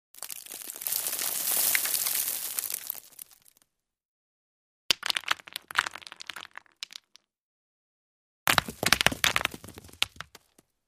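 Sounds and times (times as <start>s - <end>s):
small stones: 0.2s - 3.7s, 4.9s - 7.3s, 8.5s - 10.7s.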